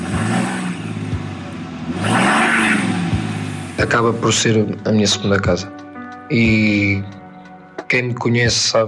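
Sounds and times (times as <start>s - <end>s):
heavy truck engine idling and revving: 0.0s - 4.9s
speech: 3.8s - 7.2s, 7.9s - 8.8s.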